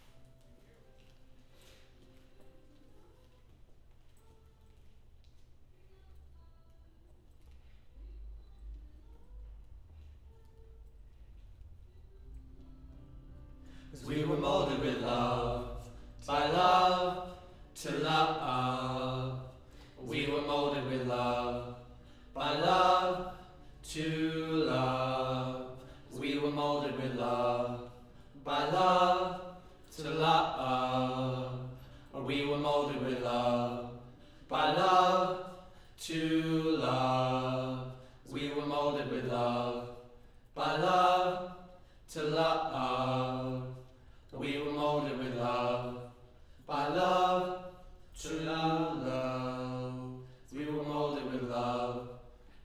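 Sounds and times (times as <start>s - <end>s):
low-mid choir singing in harmony: 12.3s - 52.6s.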